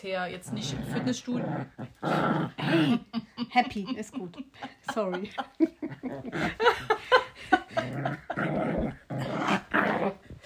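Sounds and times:
speech: 0.0s - 9.0s
dog growling over a towel: 0.3s - 3.2s, 5.9s - 7.0s, 7.6s - 10.3s
laughter: 2.7s - 8.6s.

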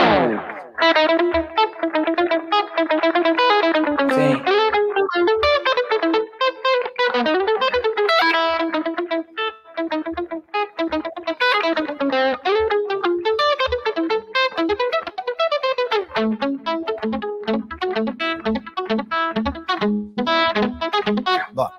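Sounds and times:
acoustic guitar playing a lively choro tune: 0.0s - 21.7s
speech: 0.9s - 3.2s
person saying a word: 4.1s - 4.5s, 21.3s - 21.7s.

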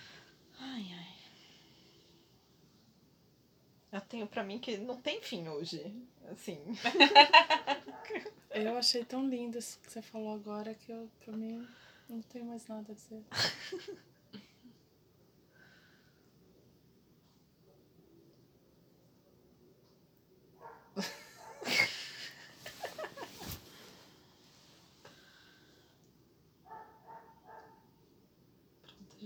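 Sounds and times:
speech: 3.9s - 14.4s, 21.0s - 21.2s
laughter: 6.8s - 8.3s, 21.0s - 23.6s
dog barking: 20.6s - 21.6s, 26.7s - 27.9s.

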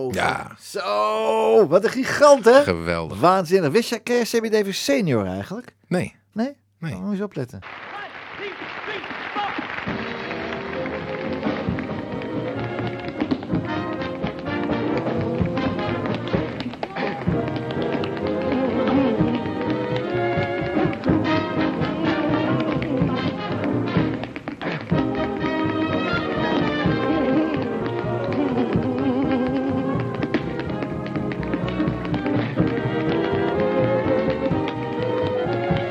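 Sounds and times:
speech: 0.0s - 7.9s
tap dancing feet on a floor: 9.5s - 35.8s
lively band music: 9.6s - 35.8s.

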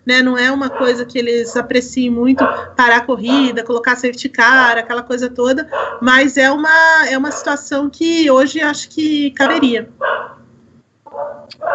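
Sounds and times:
speech: 0.1s - 10.2s
dogs barking: 0.4s - 3.6s, 5.6s - 6.2s, 7.2s - 7.6s, 9.4s - 10.5s, 11.1s - 11.7s.

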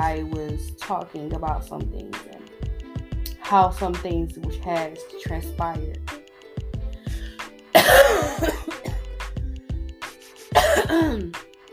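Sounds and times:
speech: 0.1s - 2.4s, 3.5s - 6.2s, 8.4s - 8.8s, 10.8s - 11.4s
harsh raspy coughing fits from hay fever: 7.7s - 9.1s, 10.3s - 11.4s.

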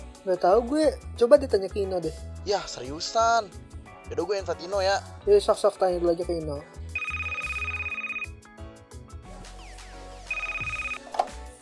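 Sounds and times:
music: 0.0s - 11.6s
speech: 0.2s - 6.8s
phone ringing with electronic trilling for an incoming call: 7.0s - 8.4s, 10.3s - 11.3s.

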